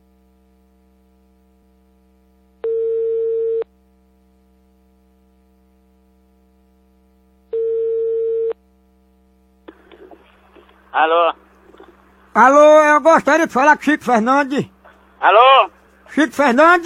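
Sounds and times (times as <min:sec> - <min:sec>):
faint hum: 0:00.0 - 0:16.8
ringback tone of an outgoing telephone call: 0:02.6 - 0:03.6, 0:07.5 - 0:08.6
speech: 0:11.0 - 0:11.4, 0:12.4 - 0:16.8.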